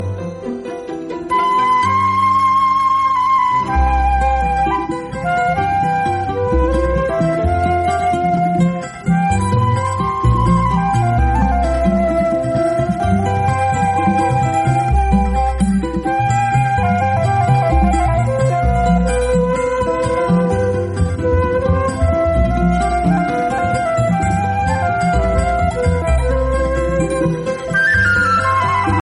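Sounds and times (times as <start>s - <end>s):
flute ringtone: 1.2s - 29.0s.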